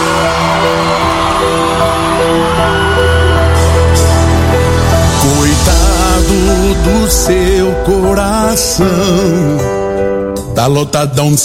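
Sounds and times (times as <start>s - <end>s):
scattered whoops: 0.0s - 4.9s
large live crowd cheering and shouting: 0.0s - 7.5s
steady musical tone: 0.0s - 11.2s
speech: 7.1s - 9.8s, 10.6s - 11.4s.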